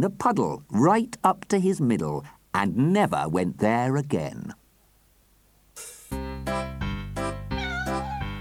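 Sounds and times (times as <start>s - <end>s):
speech: 0.0s - 4.6s
cat meowing: 7.5s - 8.3s.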